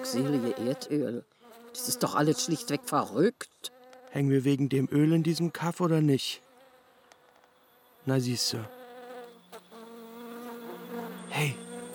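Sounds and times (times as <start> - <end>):
bees buzzing with layered harmonic hum: 0.0 - 3.1, 6.5 - 11.9
speech: 0.1 - 6.4, 8.0 - 8.8, 11.3 - 11.6.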